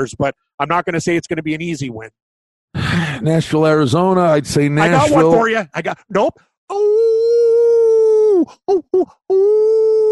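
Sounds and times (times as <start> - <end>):
speech: 0.0 - 7.2, 8.4 - 10.1
person imitating a coyote howl with yelps: 6.7 - 10.1.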